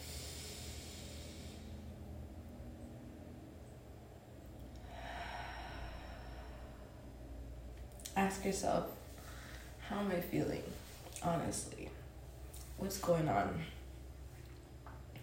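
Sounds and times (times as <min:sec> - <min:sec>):
deep breath in during a morning breathing exercise: 0:00.0 - 0:01.8, 0:04.8 - 0:07.4, 0:09.2 - 0:09.8
low steady hum: 0:00.0 - 0:15.2
speech: 0:08.2 - 0:09.0, 0:09.9 - 0:12.0, 0:12.8 - 0:13.8.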